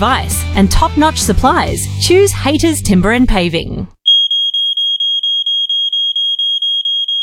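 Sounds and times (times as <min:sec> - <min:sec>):
speech: 0:00.0 - 0:04.0
smoke alarm beeping with shrill high-pitched pulses: 0:04.0 - 0:07.2.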